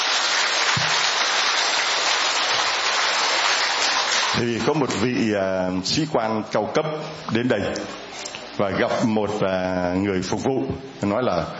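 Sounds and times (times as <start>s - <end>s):
crowd of many hands clapping steadily: 0.0s - 5.0s
speech: 4.3s - 11.5s.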